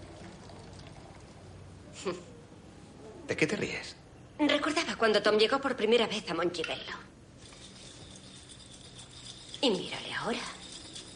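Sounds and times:
drinks pouring into glasses: 0.0 - 1.4, 7.4 - 11.1
speech: 2.0 - 2.3, 3.3 - 7.1, 9.6 - 10.6.

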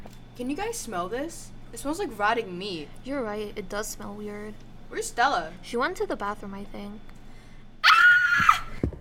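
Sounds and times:
speech: 0.4 - 7.1
woman screaming on a cruise ship on discovering dead bodies: 7.8 - 8.8.

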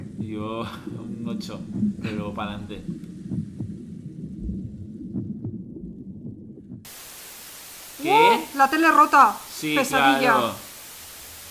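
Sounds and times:
deep whooshing rumble inside the womb: 0.0 - 6.8
heartbeat heard in the womb: 0.0 - 6.9
speech: 0.3 - 3.1, 8.0 - 10.6.

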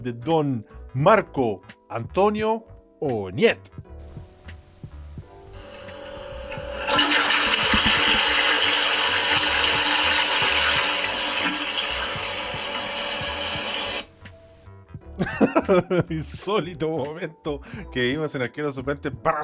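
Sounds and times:
speech: 0.0 - 3.8, 15.2 - 19.4
pull-chain toilet flush water rushing: 5.5 - 14.1
laughter: 15.2 - 16.3.

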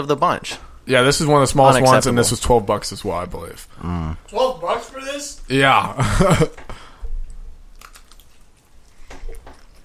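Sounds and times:
speech: 0.0 - 6.7
chewing crunchy pepperoni pizza: 7.2 - 9.8.

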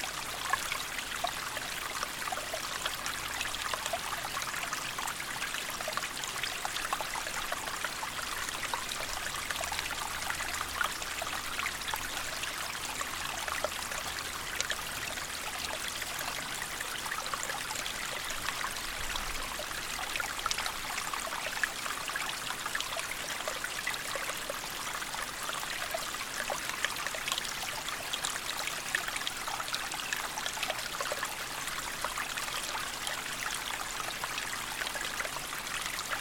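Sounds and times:
small woodland stream running down through the woods: 0.0 - 36.1.

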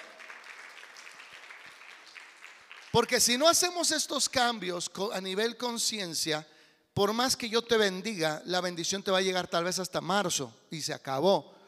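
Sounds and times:
church audience applauding: 0.0 - 3.3
speech: 3.0 - 11.6.

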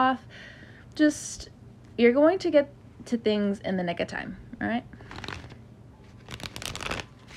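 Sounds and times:
speech: 0.0 - 5.2
tarot cards being shuffled: 5.0 - 7.3.

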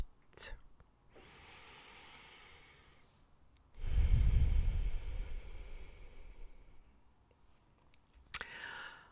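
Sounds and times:
breathing in and out through the nose: 1.2 - 3.0, 3.8 - 6.9, 8.4 - 9.1.

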